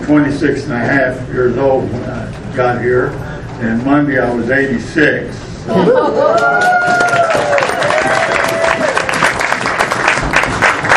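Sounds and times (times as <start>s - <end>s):
speech: 0.1s - 8.1s
crowd applauding: 6.1s - 10.9s.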